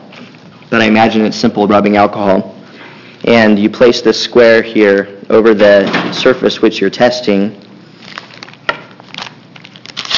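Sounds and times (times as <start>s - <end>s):
speech: 0.8s - 2.6s, 3.2s - 7.6s
gauze packet wrapper tearing open: 7.9s - 10.1s.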